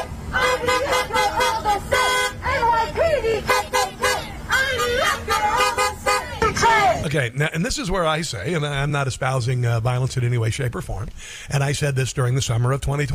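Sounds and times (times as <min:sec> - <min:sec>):
car horns honking on a busy street: 0:00.0 - 0:07.0
crowd chanting rhythmically on a busy street: 0:00.0 - 0:07.1
speech: 0:07.1 - 0:13.1.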